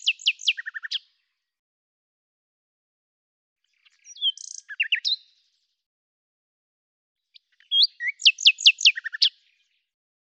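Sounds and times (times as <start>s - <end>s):
Common nightingale song phrase: 0.0s - 1.4s, 3.6s - 5.6s, 7.3s - 9.9s.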